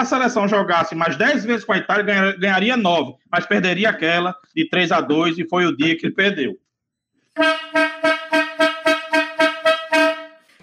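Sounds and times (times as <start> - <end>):
speech: 0.0 - 6.6, 7.4 - 8.3
loud horn honking: 7.4 - 10.6.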